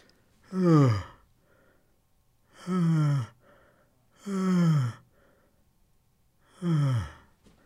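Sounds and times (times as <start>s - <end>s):
person yawning: 0.5s - 1.2s, 2.6s - 3.4s, 4.2s - 5.0s, 6.5s - 7.3s.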